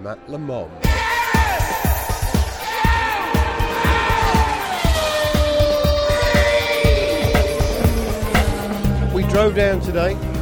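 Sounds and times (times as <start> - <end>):
speech: 0.0 - 1.8, 9.2 - 10.3
busy trackside noise: 2.0 - 10.4
Aston Martin race car roaring past: 3.4 - 9.8.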